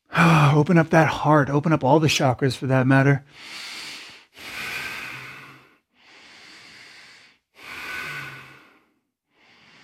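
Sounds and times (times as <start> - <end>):
speech: 0.5 - 3.7
Ujjayi breathing through a narrowed throat during a yoga flow: 3.3 - 9.8.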